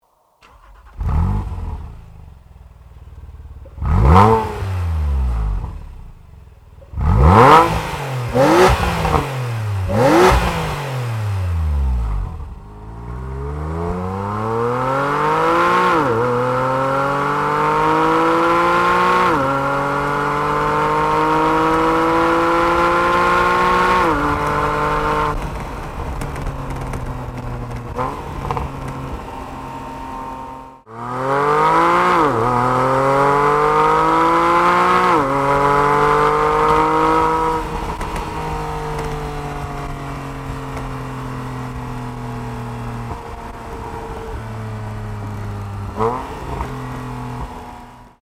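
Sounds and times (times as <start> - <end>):
Porsche 911 GTS engine: 0.0 - 48.2.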